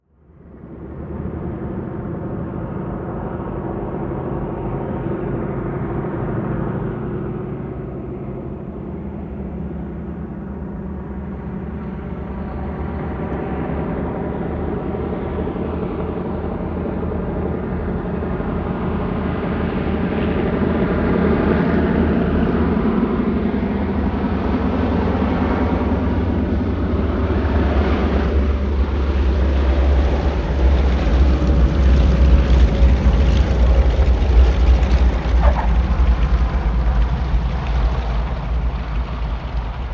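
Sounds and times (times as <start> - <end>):
Ju 52 propeller plane approaching and landing: 0.3 - 39.9
short tyre skid on landing: 32.5 - 39.9.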